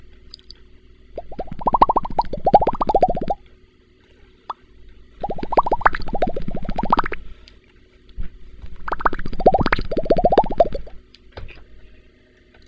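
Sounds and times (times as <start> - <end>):
trout bubble: 1.2 - 3.4, 5.2 - 7.2, 8.8 - 10.9.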